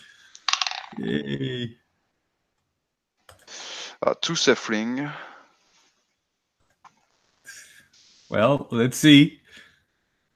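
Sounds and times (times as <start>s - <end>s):
dice rolled during a tabletop role-playing game: 0.3s - 1.0s
speech: 0.9s - 1.8s, 4.0s - 5.3s, 8.3s - 9.4s.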